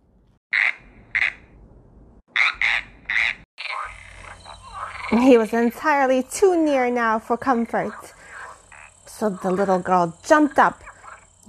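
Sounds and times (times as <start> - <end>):
toad croaking: 0.5 - 1.4, 2.3 - 6.2, 7.0 - 11.4
speech: 5.1 - 8.2, 9.2 - 10.8.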